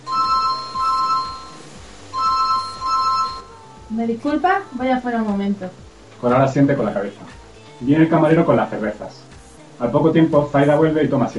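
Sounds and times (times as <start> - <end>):
mobile phone electronic ringtone: 0.0 - 3.9
speech: 3.9 - 11.3.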